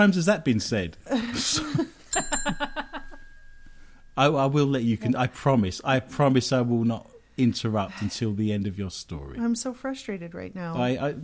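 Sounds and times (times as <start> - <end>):
speech: 0.0 - 2.6, 4.2 - 11.2
bell ringing rapidly: 2.1 - 4.6.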